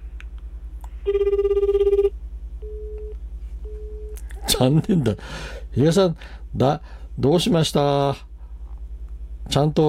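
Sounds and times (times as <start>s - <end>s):
low pulsing hum: 0.0s - 9.5s
speech: 1.0s - 1.6s, 4.6s - 8.3s, 9.5s - 9.8s
telephone ringback tone of an outgoing call: 1.1s - 4.2s.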